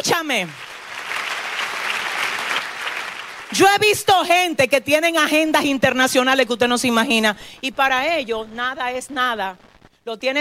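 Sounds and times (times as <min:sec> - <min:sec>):
speech: 0:00.0 - 0:00.6, 0:03.5 - 0:10.3
church congregation applauding: 0:00.0 - 0:04.0.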